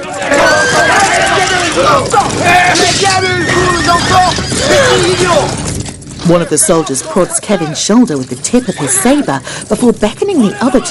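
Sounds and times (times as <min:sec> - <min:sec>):
three horses rearing, whinnying and neighing: 0:00.0 - 0:05.9, 0:07.0 - 0:09.6
continuous din of crowd voices and movement: 0:00.0 - 0:10.8
speech: 0:01.9 - 0:03.6, 0:06.3 - 0:10.8.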